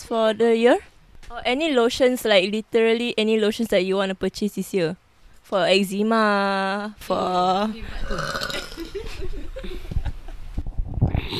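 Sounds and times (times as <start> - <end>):
speech: 0.1 - 9.9
long rumbling croaky burp: 8.0 - 9.1
laughter: 8.6 - 10.4.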